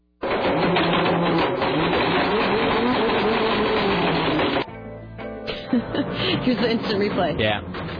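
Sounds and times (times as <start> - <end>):
blender grinding an iPhone: 0.2 - 4.6
speech: 5.8 - 7.8.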